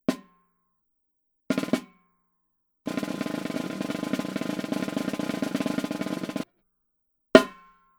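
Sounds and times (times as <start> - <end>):
snare drum single hit: 2.9 - 6.4.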